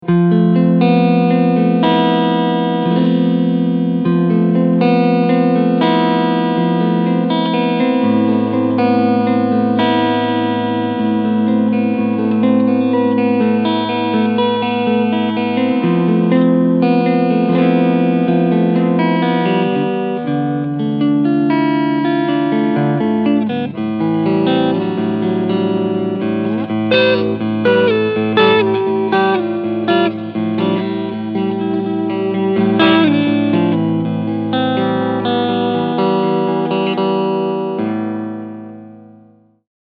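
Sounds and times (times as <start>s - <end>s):
clean electric guitar with both humbuckers and single-coil: 0.0s - 39.6s.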